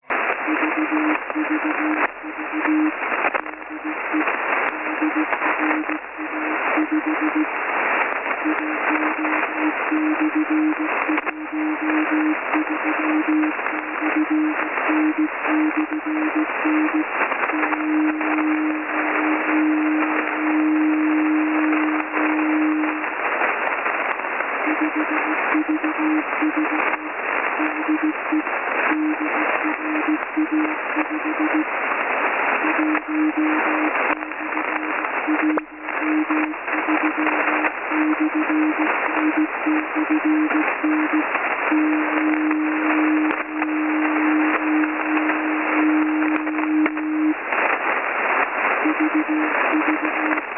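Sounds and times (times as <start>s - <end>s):
5195 kHz USB radio transmission: 0.0s - 50.5s.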